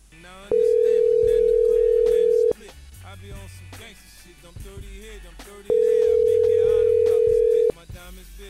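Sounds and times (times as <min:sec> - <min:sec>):
telephone line ringing on an unanswered call: 0:00.5 - 0:02.6, 0:05.7 - 0:07.7.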